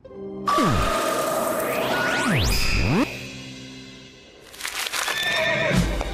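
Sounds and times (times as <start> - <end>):
squeaky warbling tonal sounds: 0.5 - 3.4
horse neighing and whinnying: 5.0 - 6.0.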